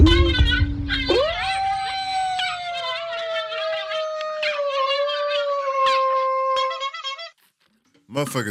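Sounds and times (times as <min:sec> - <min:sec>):
dog howling: 0:00.1 - 0:07.2
speech: 0:08.2 - 0:08.4.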